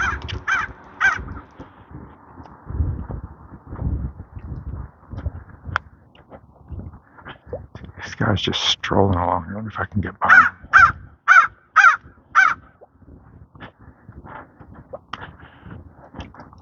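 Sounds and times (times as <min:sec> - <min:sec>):
crow cawing: 0:00.0 - 0:01.5, 0:10.2 - 0:12.8
low thumping footsteps on a walk: 0:00.0 - 0:08.1, 0:11.8 - 0:16.6
outdoor rustling: 0:00.0 - 0:16.6
speech: 0:08.2 - 0:10.5.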